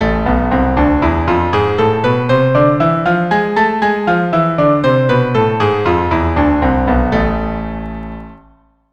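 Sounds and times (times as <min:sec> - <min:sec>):
keyboard playing A harmonic minor scale two octaves apart: 0:00.0 - 0:08.4.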